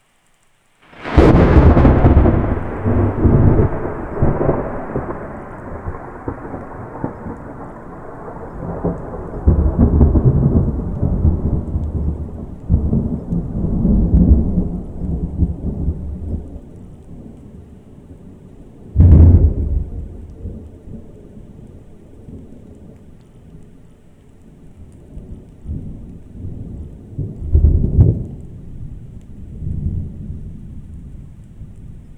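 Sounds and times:
single clean thunderclap: 0.9s - 17.4s, 19.0s - 21.2s, 25.2s - 31.8s.

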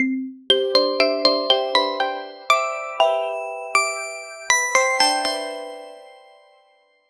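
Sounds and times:
joyful glimmering positive chime: 0.6s - 6.9s.

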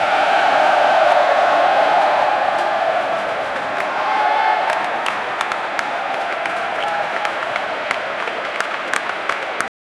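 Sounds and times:
soccer fans cheering in stadium: 0.0s - 9.7s.

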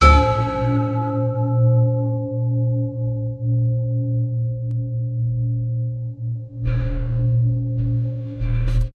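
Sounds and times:
deep bell strikes: 0.0s - 8.9s.

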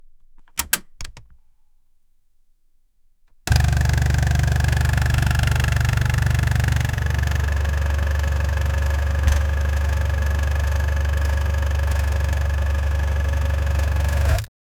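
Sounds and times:
electric motor starting up: 3.5s - 14.5s.

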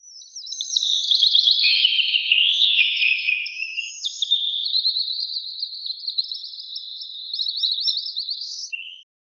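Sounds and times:
birds singing in a forest: 0.0s - 9.1s.

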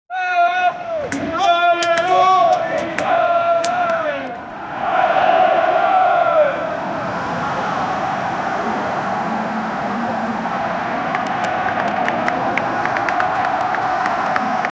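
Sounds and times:
street sounds: 0.7s - 14.7s.

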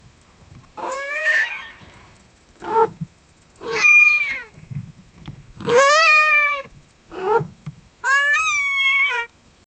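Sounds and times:
scared cat yowling: 0.8s - 1.8s, 3.6s - 4.5s, 5.6s - 9.3s.

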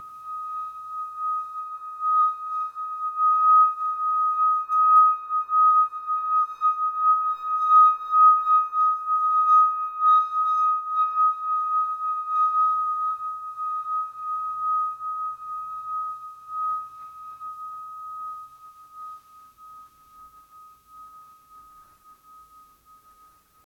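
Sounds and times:
Tibetan bowl drone for meditation: 0.0s - 23.7s.

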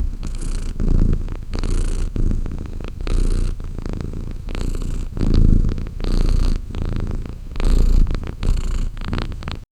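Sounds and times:
wild puma purring: 0.0s - 9.7s.

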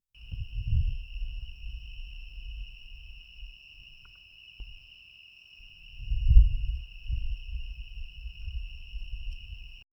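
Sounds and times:
jungle background ambience: 0.2s - 9.8s.

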